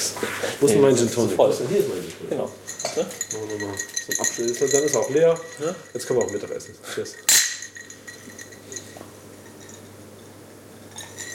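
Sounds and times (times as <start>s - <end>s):
speech: 0.2s - 7.4s
drinking glasses clinking in a toast: 2.3s - 11.3s
low steady hum: 2.5s - 11.3s.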